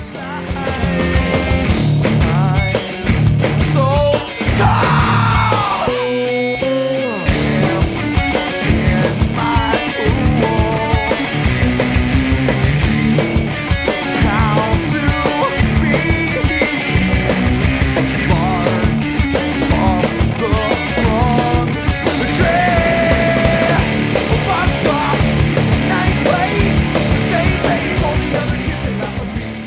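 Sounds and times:
loud dense rock song with full band: 0.0s - 29.6s
raw screamed vocal in a rock song: 4.4s - 6.3s.

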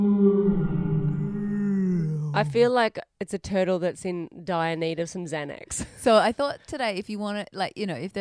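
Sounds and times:
synthetic wolf howl sound effect from buzzer button: 0.0s - 2.7s
speech: 2.4s - 8.1s.

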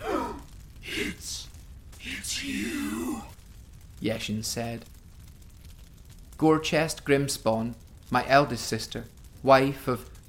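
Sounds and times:
small startled gasp: 0.0s - 1.1s
speech: 4.0s - 5.0s, 6.4s - 10.1s.

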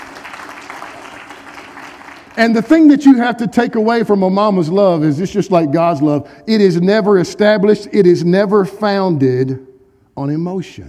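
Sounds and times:
audience clapping: 0.0s - 2.9s
speech: 2.4s - 10.8s.

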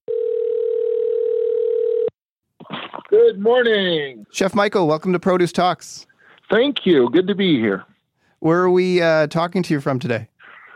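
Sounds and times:
telephone line tone: 0.1s - 2.1s
speech: 3.1s - 10.3s.

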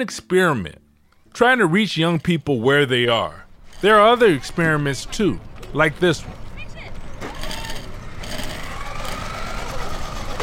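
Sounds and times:
speech: 0.0s - 0.8s, 1.4s - 6.4s
gritty crunching and rattling: 1.0s - 10.4s
RC car motor whining around outdoor track: 3.5s - 10.4s.

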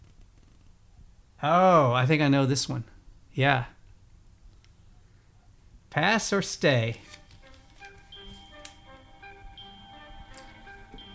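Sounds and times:
speech: 1.4s - 3.8s, 5.9s - 7.2s
tense plinking musical cue: 7.3s - 11.1s
game show countdown clock ticking: 7.4s - 11.1s.

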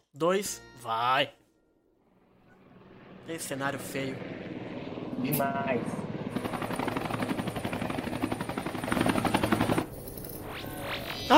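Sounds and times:
speech: 0.2s - 1.4s, 3.2s - 4.4s, 5.2s - 6.5s
helicopter rotor thumping in a video game: 2.4s - 10.5s.

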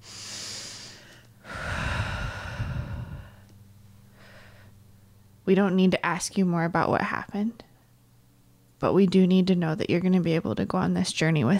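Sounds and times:
slow deep breathing: 0.0s - 4.8s
speech: 5.5s - 7.7s, 8.8s - 11.5s.

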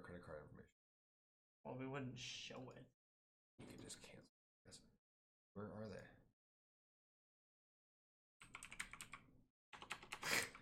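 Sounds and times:
speech: 0.1s - 0.8s, 1.6s - 3.0s, 3.6s - 5.0s, 5.6s - 6.2s
typing on a computer keyboard: 8.4s - 10.6s.

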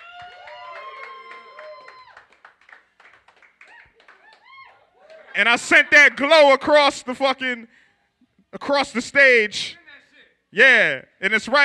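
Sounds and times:
crowd at a beat battle cheering and clapping: 0.0s - 5.4s
speech: 5.4s - 7.8s, 8.5s - 9.8s, 10.5s - 11.6s.

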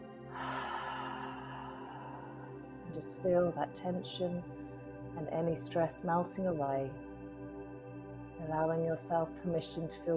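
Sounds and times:
deep relaxation breath in through nose: 0.3s - 2.8s
speech: 2.9s - 4.6s, 5.2s - 7.0s, 8.5s - 10.1s.

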